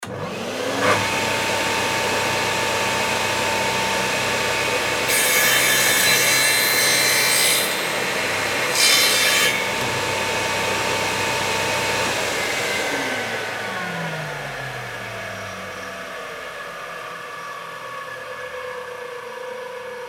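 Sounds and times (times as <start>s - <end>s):
chainsaw: 0.0s - 15.3s.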